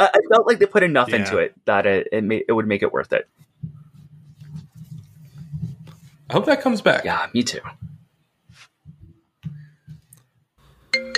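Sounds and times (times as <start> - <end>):
speech: 0.0 - 3.8, 6.3 - 7.9
soft low bumps and rustles: 3.4 - 10.1
loud bright electronic phone ringtone: 10.9 - 11.1.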